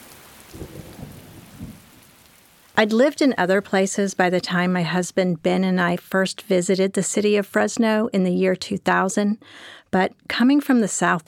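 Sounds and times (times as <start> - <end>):
rain hiss: 0.0 - 3.2
low rolling rumbles of thunder: 0.5 - 2.1
speech: 2.8 - 11.2.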